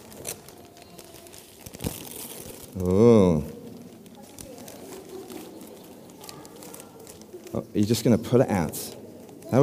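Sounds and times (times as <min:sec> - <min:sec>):
wrapping paper on a present being ripped open: 0:00.0 - 0:07.6
speech: 0:02.8 - 0:03.5, 0:07.8 - 0:09.6.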